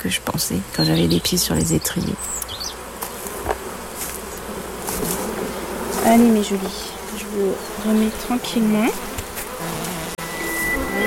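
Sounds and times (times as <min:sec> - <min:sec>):
speech: 0:00.0 - 0:02.4, 0:06.1 - 0:09.8
honeybees buzzing around a hive: 0:00.0 - 0:11.0
individual bees whining past: 0:00.7 - 0:11.0.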